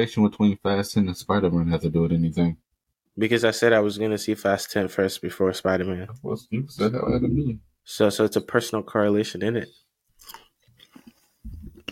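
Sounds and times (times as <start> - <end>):
speech: 0.0 - 2.6, 3.2 - 10.4
crunching and chewing while eating: 10.2 - 11.9.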